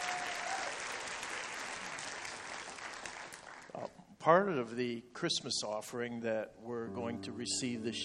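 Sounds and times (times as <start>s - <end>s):
audience clapping: 0.0s - 4.0s
speech: 3.8s - 8.0s.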